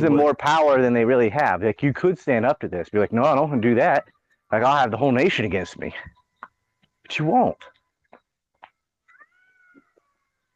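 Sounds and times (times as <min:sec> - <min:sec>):
speech: 0:00.0 - 0:06.2, 0:07.1 - 0:07.7
cat yowling: 0:09.1 - 0:10.3.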